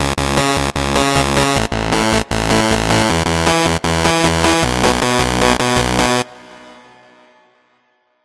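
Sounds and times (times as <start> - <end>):
gritty bass: 0.0 - 6.3.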